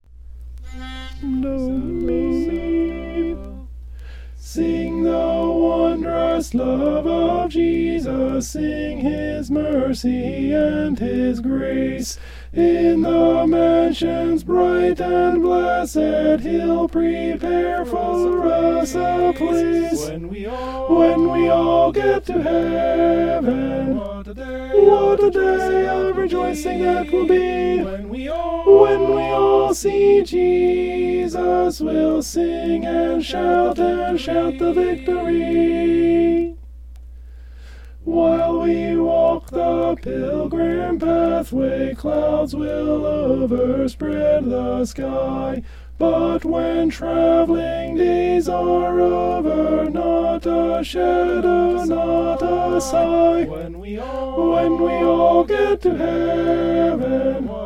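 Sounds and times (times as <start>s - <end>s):
alto voice singing a hymn: 0.6s - 36.6s, 38.0s - 57.6s.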